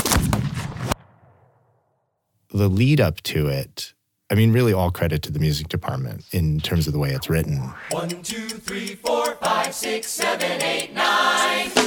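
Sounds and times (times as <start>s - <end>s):
booming gunshot of a duel: 0.0s - 1.6s
speech: 2.6s - 11.8s.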